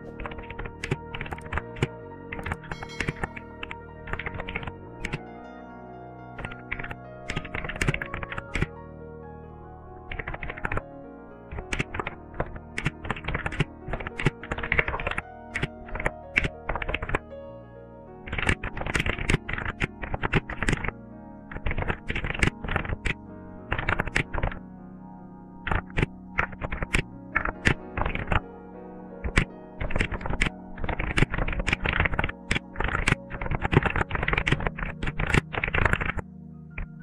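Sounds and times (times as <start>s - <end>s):
typing on a computer keyboard: 0.2s - 5.2s, 6.4s - 8.7s, 10.1s - 10.8s, 11.5s - 17.2s, 18.3s - 20.9s, 21.5s - 24.6s, 25.7s - 28.4s, 29.2s - 36.2s.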